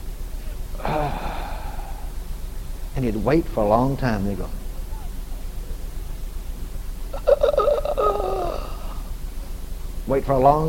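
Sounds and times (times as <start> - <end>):
faint hiss: 0.0 - 10.6
man's voice imitating a dying man's exhaled breath: 0.8 - 2.2
speech: 3.0 - 4.6, 10.1 - 10.6.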